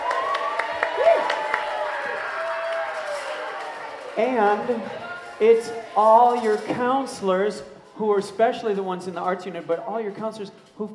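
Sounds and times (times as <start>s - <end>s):
crowd whoops and cheers: 0.0s - 4.2s
crowd applauding: 0.0s - 5.9s
speech: 4.2s - 10.9s.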